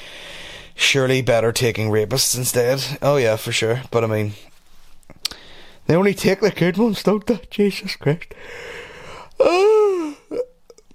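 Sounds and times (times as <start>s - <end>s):
short breathy exhale: 0.0s - 0.8s, 8.4s - 9.4s
speech: 0.9s - 4.5s, 5.9s - 8.8s, 9.4s - 9.8s
drawn-out voiced yawn: 9.1s - 10.8s.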